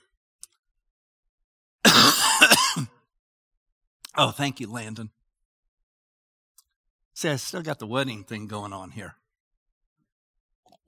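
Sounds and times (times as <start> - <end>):
person coughing and clearing throat: 1.8 - 3.1
speech: 4.2 - 5.2, 7.2 - 9.2.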